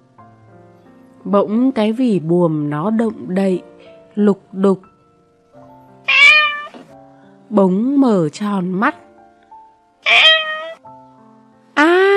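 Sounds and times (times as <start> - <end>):
speech: 1.2 - 4.9, 7.5 - 9.0
cat meowing loudly: 6.1 - 6.9, 10.0 - 10.8.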